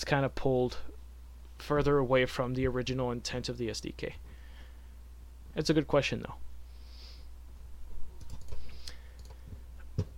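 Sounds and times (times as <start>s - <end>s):
speech: 0.0s - 0.9s, 1.6s - 4.3s, 5.6s - 6.5s
typing on a computer keyboard in an event chat: 8.2s - 9.4s.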